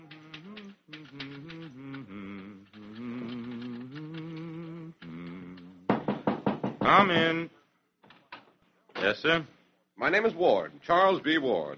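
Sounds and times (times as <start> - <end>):
typewriter keystrokes typing a play manuscript on a borrowed typewriter: 0.0 - 5.9
man humming the chorus of a song: 0.0 - 6.4
speech: 6.9 - 7.5, 9.0 - 11.7.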